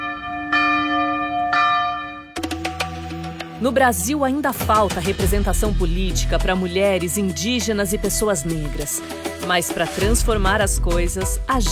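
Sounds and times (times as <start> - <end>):
bells ringing: 0.0 - 4.2
speech: 3.6 - 11.7.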